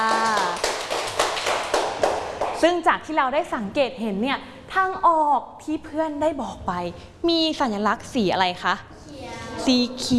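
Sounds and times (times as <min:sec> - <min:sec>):
classmates clapping in a classroom for a student: 0:00.0 - 0:02.8
speech: 0:02.6 - 0:08.9, 0:09.6 - 0:10.1.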